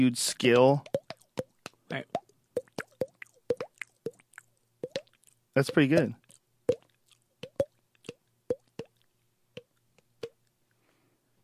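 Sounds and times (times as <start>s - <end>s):
speech: 0.0s - 1.0s, 5.6s - 6.2s
voice imitating water drop plops with the mouth: 0.4s - 9.0s.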